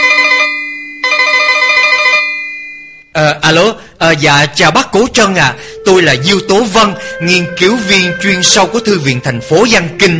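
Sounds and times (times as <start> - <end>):
telephone ringing in an office: 0.0 - 3.1
speech: 4.1 - 10.1.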